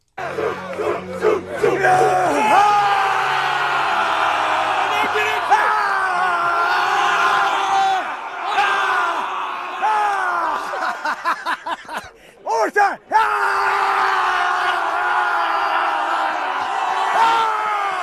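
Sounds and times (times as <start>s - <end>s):
large football crowd screaming and yelling: 0.2s - 11.9s, 13.0s - 18.0s
laughter: 9.9s - 12.4s.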